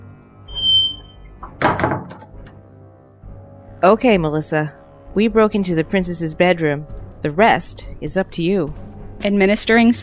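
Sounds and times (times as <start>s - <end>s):
door creaking open: 0.5s - 2.4s
door thunk and rattle: 1.4s - 2.4s
speech: 3.8s - 10.0s.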